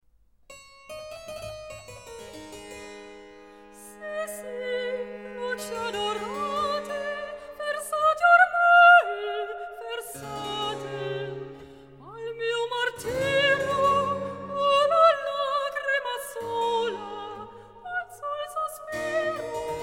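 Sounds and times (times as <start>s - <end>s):
soprano singing recitative in a cantata: 3.8s - 11.4s, 12.0s - 19.8s.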